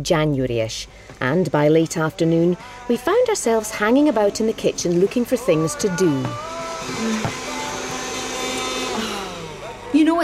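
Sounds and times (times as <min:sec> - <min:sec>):
speech: 0:00.0 - 0:07.4, 0:09.9 - 0:10.2
vacuum cleaner hoovering a drawer: 0:02.4 - 0:10.2.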